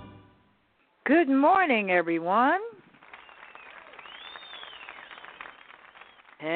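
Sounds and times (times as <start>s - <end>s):
speech: 1.1s - 2.8s
audience applauding: 2.9s - 6.5s
brief whistle: 3.2s - 6.3s.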